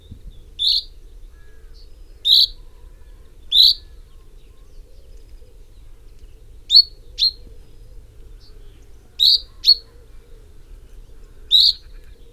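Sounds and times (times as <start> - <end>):
Common chaffinch Fringilla coelebs calling with pink notes: 0.6 - 0.9, 2.2 - 2.6, 3.5 - 3.8, 9.2 - 9.9, 11.5 - 12.0.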